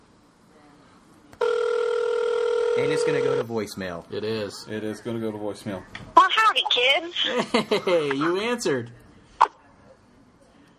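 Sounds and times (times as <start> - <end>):
ringback tone of an outgoing telephone call: 1.4 - 3.4
speech: 2.8 - 6.2, 6.8 - 9.0
laughter: 7.2 - 8.2.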